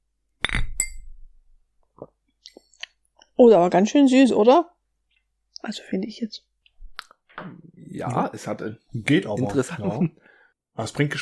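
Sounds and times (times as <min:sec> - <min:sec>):
drinking glasses clinking in a toast: 0:00.4 - 0:01.2
speech: 0:03.4 - 0:04.7, 0:05.6 - 0:06.5, 0:07.4 - 0:10.2, 0:10.8 - 0:11.1.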